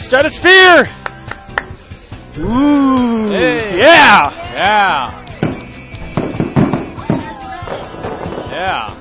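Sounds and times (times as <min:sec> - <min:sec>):
speech: 0:00.1 - 0:01.0, 0:02.4 - 0:05.2, 0:08.6 - 0:08.9
fireworks bursts booming with low rumble: 0:05.4 - 0:08.8.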